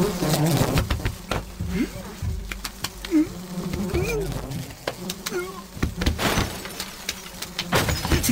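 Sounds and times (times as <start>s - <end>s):
game sound effect of a wasp buzzing in a commentators' booth: 0.0s - 8.3s
clicks and thumps of swatting and scuffling: 0.1s - 8.3s.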